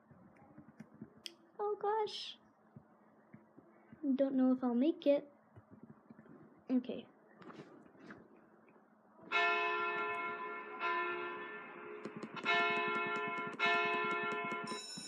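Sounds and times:
speech: 0:01.6 - 0:02.4, 0:04.0 - 0:05.3, 0:06.7 - 0:07.7
loud bell ringing at the end of a PE class: 0:09.3 - 0:15.0.

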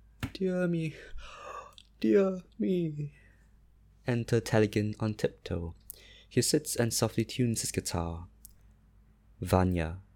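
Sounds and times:
speech: 0:00.4 - 0:01.4, 0:02.0 - 0:03.2, 0:04.0 - 0:08.3, 0:09.4 - 0:10.0
person yawning: 0:01.2 - 0:01.8.

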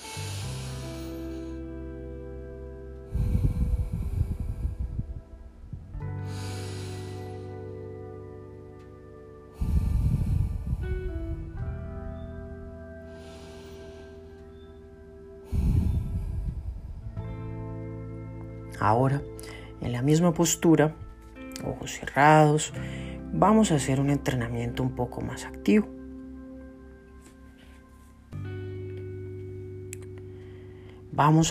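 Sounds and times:
person breathing deeply during a guided breathing exercise: 0:00.0 - 0:01.9, 0:03.0 - 0:05.4, 0:06.0 - 0:08.1, 0:09.5 - 0:12.0, 0:12.8 - 0:14.8, 0:15.4 - 0:17.7, 0:19.3 - 0:19.8, 0:22.7 - 0:23.3
soft sustained musical drone: 0:00.0 - 0:31.4
speech: 0:18.8 - 0:21.1, 0:21.8 - 0:26.0, 0:31.2 - 0:31.4.

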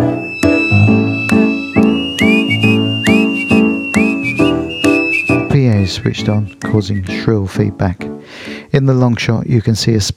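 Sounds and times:
loud live music from a band: 0:00.0 - 0:05.6
man whistling a tune with sliding notes: 0:00.0 - 0:07.3
steady rhythmic piano-like chords and hits: 0:00.0 - 0:08.7
speech: 0:06.0 - 0:10.1.

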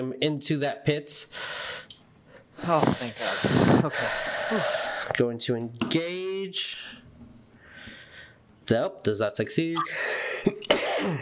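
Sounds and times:
speech: 0:00.0 - 0:01.9, 0:02.6 - 0:07.1, 0:08.7 - 0:11.1
person sneezing: 0:10.4 - 0:11.1.

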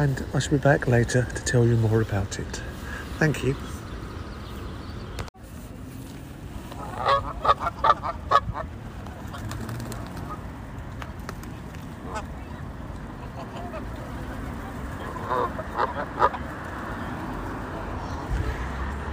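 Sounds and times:
speech: 0:00.0 - 0:03.7
wind at a pond: 0:00.0 - 0:19.1
Canada geese honking on a pond: 0:06.8 - 0:09.5, 0:15.0 - 0:16.6.

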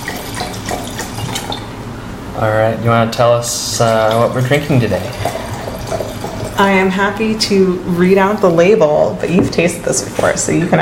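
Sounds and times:
wine pouring into a glass: 0:00.0 - 0:01.7, 0:03.8 - 0:06.6
speech: 0:02.4 - 0:06.0, 0:06.6 - 0:10.8.

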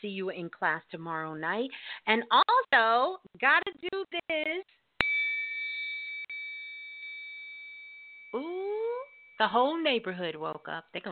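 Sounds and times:
speech: 0:00.0 - 0:04.8, 0:08.4 - 0:08.8, 0:09.4 - 0:11.0
bell struck and ringing with a high metallic tone: 0:05.0 - 0:09.4.

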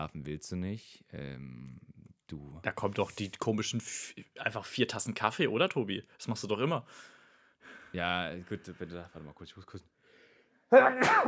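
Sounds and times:
speech: 0:00.0 - 0:09.9, 0:10.7 - 0:11.2
person sneezing loudly: 0:10.8 - 0:11.2.

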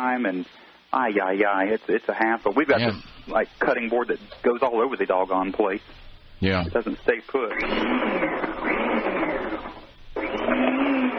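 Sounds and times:
speech: 0:00.0 - 0:09.1
steady motor whir as zucchini, squash and carrots are sliced: 0:07.6 - 0:11.1.

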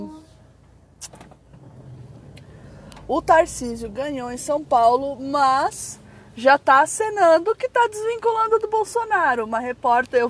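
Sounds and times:
car idling in heavy traffic heard from inside: 0:00.0 - 0:06.8
speech: 0:03.1 - 0:10.2.

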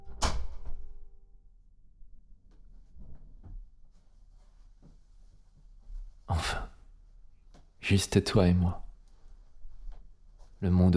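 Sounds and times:
door shutting with a solid thud: 0:00.0 - 0:01.0
faint knocks or footsteps: 0:02.4 - 0:07.9, 0:08.5 - 0:10.9
speech: 0:07.9 - 0:08.8, 0:10.6 - 0:10.9.

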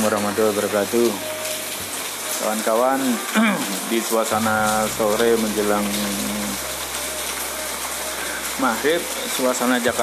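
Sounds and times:
speech: 0:00.0 - 0:01.4, 0:02.4 - 0:06.4, 0:08.6 - 0:10.0
light afternoon drizzle falling in Jakarta: 0:00.0 - 0:10.0
low hum: 0:04.4 - 0:09.3
brief tonal drone: 0:04.4 - 0:09.4.

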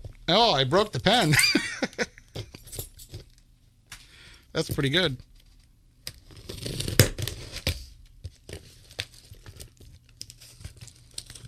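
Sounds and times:
speech: 0:00.3 - 0:01.7, 0:04.6 - 0:05.3
laughter: 0:01.3 - 0:02.3
wrapping crinkling: 0:04.6 - 0:11.4
package torn open by hand: 0:06.1 - 0:07.8, 0:08.4 - 0:11.4.

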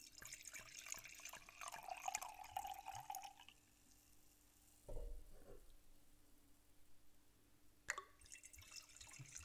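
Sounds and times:
wine glugging as it is poured: 0:00.2 - 0:03.6, 0:07.9 - 0:09.4
small thud: 0:04.9 - 0:05.7.

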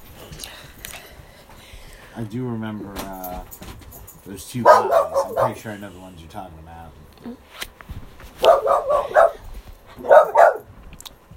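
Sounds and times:
speech: 0:02.2 - 0:07.7
dog barking: 0:04.6 - 0:05.7, 0:08.4 - 0:09.4, 0:10.0 - 0:10.7.

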